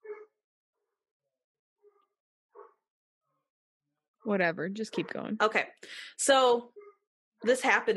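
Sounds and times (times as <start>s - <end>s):
dog barking: 0.0s - 0.4s, 1.8s - 2.9s
speech: 4.2s - 6.8s, 7.4s - 7.9s.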